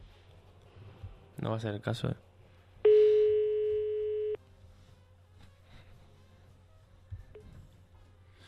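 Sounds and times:
speech: 1.4s - 2.3s
telephone ringback tone of an unanswered call: 2.9s - 4.4s.

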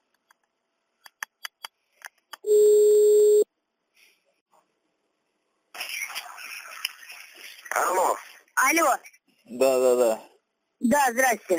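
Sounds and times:
steady telephone line tone while a second caller is connected: 2.5s - 3.5s
speech: 8.9s - 11.5s.

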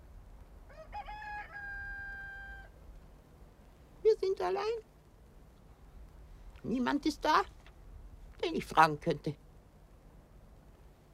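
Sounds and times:
rooster crowing on a farm: 0.7s - 2.8s
speech: 4.2s - 4.9s, 6.6s - 7.6s, 8.4s - 9.4s.

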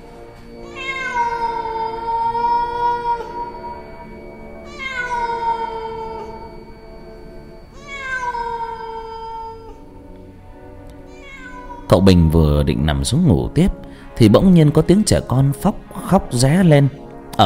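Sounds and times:
cat meowing at night: 0.6s - 4.0s, 4.7s - 6.5s, 7.8s - 9.8s, 11.0s - 12.0s
speech: 11.9s - 17.4s.

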